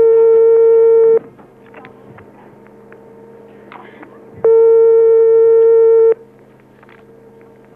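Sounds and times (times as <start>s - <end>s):
telephone ringback tone on an outgoing call: 0.0s - 1.2s, 4.5s - 6.2s.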